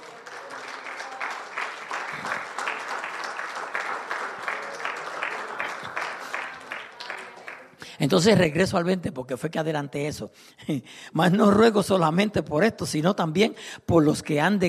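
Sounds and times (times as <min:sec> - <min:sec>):
audience applauding: 0:00.0 - 0:08.2
speech: 0:08.0 - 0:14.6.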